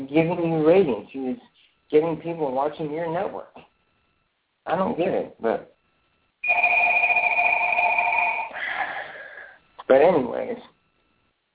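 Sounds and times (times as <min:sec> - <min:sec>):
speech: 0:00.0 - 0:03.6, 0:04.7 - 0:05.7, 0:06.5 - 0:06.8, 0:09.9 - 0:10.7
telephone ringing with an electronic trill: 0:06.4 - 0:08.6.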